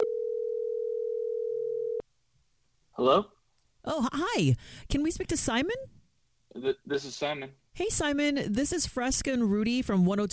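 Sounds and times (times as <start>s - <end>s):
telephone ringing tone: 0.0s - 2.0s
speech: 3.0s - 6.0s, 6.6s - 10.3s.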